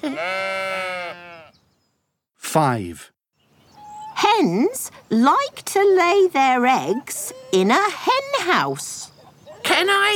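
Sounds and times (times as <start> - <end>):
speech: 0.0 - 0.8, 2.5 - 3.2, 4.3 - 10.1
sheep bleating on a farm with new lambs: 0.0 - 1.6.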